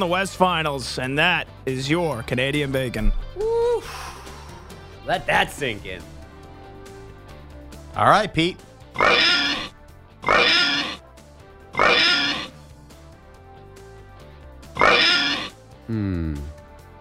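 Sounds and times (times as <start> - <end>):
speech: 0.0 - 4.0, 5.1 - 6.2, 8.0 - 9.4
pig oinking: 9.0 - 11.0, 11.7 - 12.6, 14.8 - 15.6.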